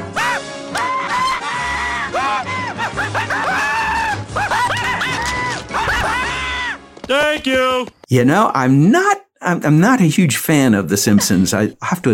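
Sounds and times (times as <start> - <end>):
cartoon character screaming with yelps and gasps: 0.2 - 6.8
speech: 7.1 - 12.1.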